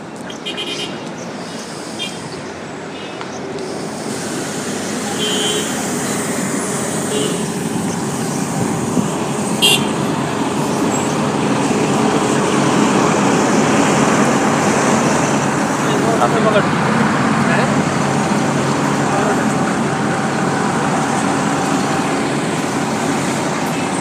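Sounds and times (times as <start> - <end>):
bus engine rumble arriving at a stop in Abu Dhabi: 0.0 - 23.9
road traffic in Abu Dhabi: 0.0 - 23.9.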